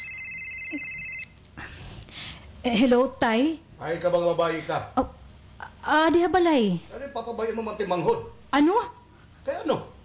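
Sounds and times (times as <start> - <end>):
cellphone ringing with an incoming call: 0.0 - 1.4
speech: 0.7 - 1.0, 2.6 - 5.2, 5.8 - 9.9.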